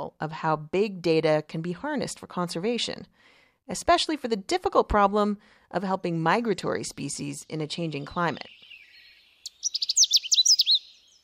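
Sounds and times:
speech: 0:00.0 - 0:08.6
Canada warbler singing a jumbled burst of high chirps: 0:07.4 - 0:11.2.

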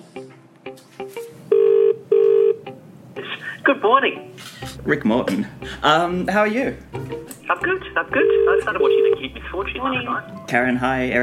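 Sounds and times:
speech: 0:01.0 - 0:01.3, 0:03.7 - 0:11.2
telephone dialing tones as people dial into a conference call: 0:01.5 - 0:02.6, 0:08.1 - 0:09.3.

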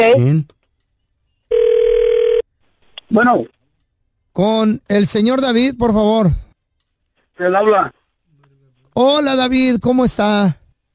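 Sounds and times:
speech: 0:00.0 - 0:00.6, 0:03.1 - 0:03.6, 0:04.4 - 0:06.4, 0:07.4 - 0:08.0, 0:09.0 - 0:10.6
ringback tone from an outgoing phone call: 0:01.5 - 0:02.4.

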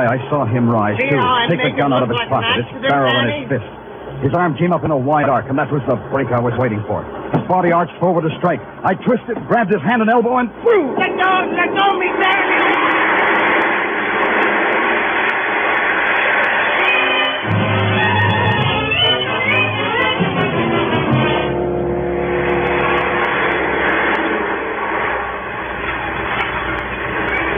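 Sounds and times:
speech: 0:00.0 - 0:13.0
roller coaster cars rumbling and rattling along the track: 0:00.0 - 0:27.5.

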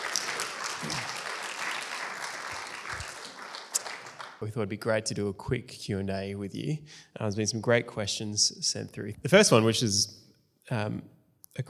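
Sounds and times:
audience clapping: 0:00.0 - 0:04.4
speech: 0:00.8 - 0:01.2, 0:04.4 - 0:11.6.

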